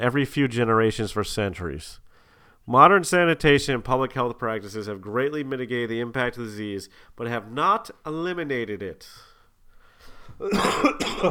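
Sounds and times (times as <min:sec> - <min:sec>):
speech: 0:00.0 - 0:09.3, 0:10.4 - 0:11.2
harsh cough: 0:10.4 - 0:11.2.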